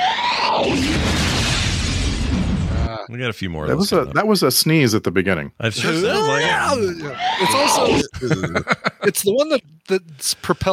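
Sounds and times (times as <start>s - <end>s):
fire sound effect roaring: 0.0s - 2.9s
speech: 3.1s - 10.7s
laughter: 5.9s - 9.2s.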